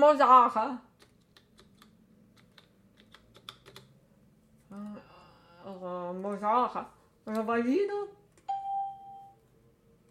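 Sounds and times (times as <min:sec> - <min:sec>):
speech: 0:00.0 - 0:00.9, 0:05.7 - 0:08.2
typing on a computer keyboard: 0:00.9 - 0:04.0.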